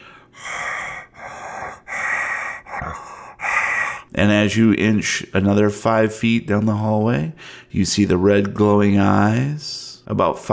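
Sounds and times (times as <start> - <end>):
voice imitating rough, ragged breathing: 0.0 - 4.2
speech: 4.2 - 10.5.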